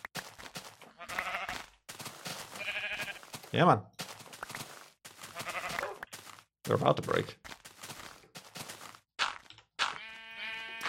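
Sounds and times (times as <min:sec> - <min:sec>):
sheep bleating: 0:00.8 - 0:01.7, 0:02.5 - 0:03.3, 0:05.2 - 0:06.0, 0:09.8 - 0:10.8
speech: 0:03.5 - 0:03.9, 0:06.7 - 0:07.4.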